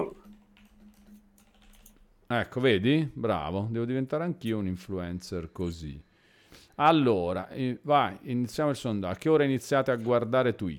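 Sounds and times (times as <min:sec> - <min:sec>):
typing on a SteelSeries mechanical keyboard: 0:00.2 - 0:02.0
speech: 0:02.3 - 0:06.1, 0:06.8 - 0:10.7.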